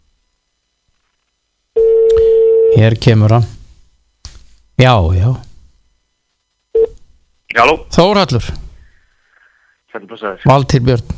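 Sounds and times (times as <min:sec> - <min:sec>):
telephone line tone as a call is placed: 0:01.8 - 0:02.8
speech: 0:02.8 - 0:03.6, 0:04.8 - 0:05.4, 0:07.5 - 0:08.6, 0:10.0 - 0:11.1.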